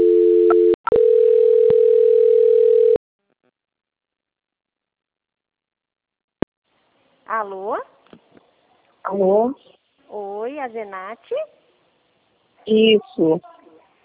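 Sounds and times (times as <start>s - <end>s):
steady telephone tone while a call is transferred: 0.0s - 3.0s
speech: 7.4s - 7.9s, 9.1s - 11.6s, 12.6s - 13.5s.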